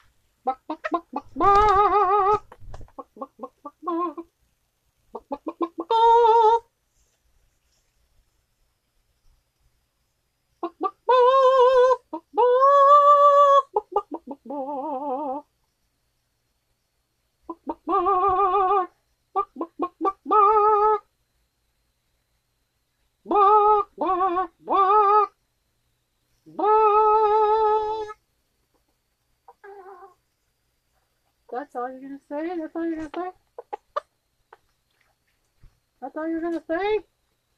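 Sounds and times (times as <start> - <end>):
rooster clucking and calling: 0.0 - 4.3, 5.1 - 6.7, 10.6 - 15.5, 17.5 - 21.1, 23.3 - 25.4, 26.5 - 28.2, 29.5 - 30.2, 32.7 - 34.7.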